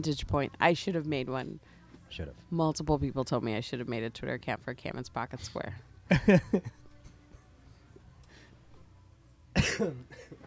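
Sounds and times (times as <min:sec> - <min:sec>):
speech: 0:00.0 - 0:06.8, 0:09.6 - 0:10.4
harsh coughing: 0:09.6 - 0:10.4.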